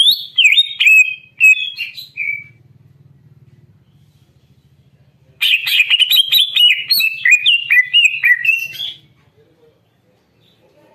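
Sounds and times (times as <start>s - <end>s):
greater green leafbird singing a rich warbling phrase: 0.0s - 2.6s, 5.4s - 9.1s
faint low hum: 0.0s - 10.9s.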